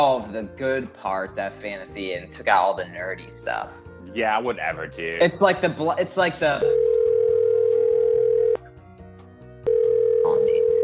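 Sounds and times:
speech: 0.0 - 6.8
incoming phone call tone: 6.6 - 8.6, 9.6 - 10.8.

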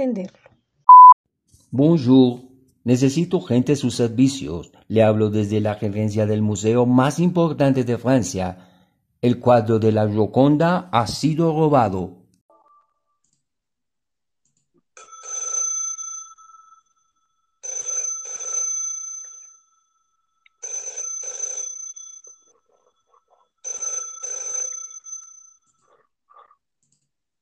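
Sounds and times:
speech: 0.0 - 0.5, 1.7 - 12.2
old-style telephone bell ringing: 15.0 - 26.0.

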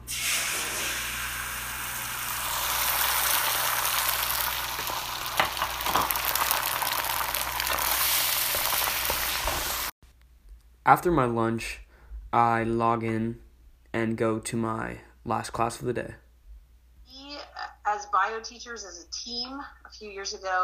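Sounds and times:
eggs frying in a pan with melted butter: 0.0 - 10.0
speech: 10.9 - 16.2, 18.3 - 20.6.

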